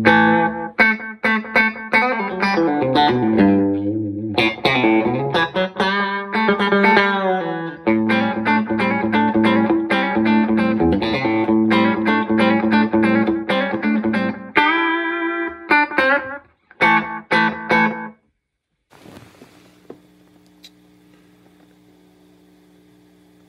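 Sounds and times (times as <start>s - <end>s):
electric guitar through an analog delay pedal with slapback echo: 0.0s - 18.2s
faint hiss: 18.9s - 23.4s.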